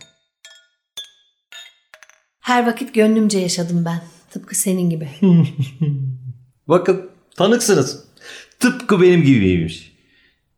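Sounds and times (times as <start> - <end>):
glasses clinking in a toast: 0.0 - 2.3
speech: 2.5 - 6.1, 6.7 - 9.9
laughter: 5.2 - 6.4.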